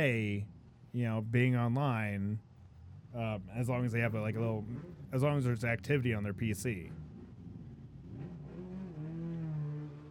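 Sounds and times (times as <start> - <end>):
speech: 0.0 - 2.5, 3.1 - 7.0
loud motorcycle engine revving: 4.6 - 5.2, 6.9 - 10.0.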